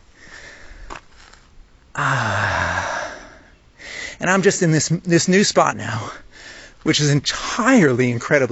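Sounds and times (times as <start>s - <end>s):
person panting heavily after an uphill sprint outdoors in nature: 0.2s - 1.0s, 2.0s - 4.2s, 6.2s - 6.8s
speech: 4.2s - 8.4s.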